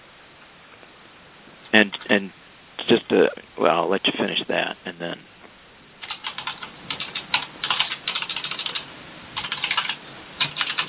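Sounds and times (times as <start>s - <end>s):
speech: 1.7s - 5.3s
typing on a computer keyboard: 6.0s - 10.8s.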